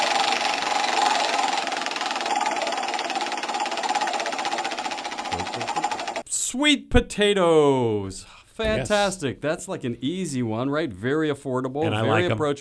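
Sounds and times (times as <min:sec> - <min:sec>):
large prize wheel spinning with rapid clicks: 0:00.0 - 0:06.2
speech: 0:05.4 - 0:05.9, 0:06.5 - 0:12.5.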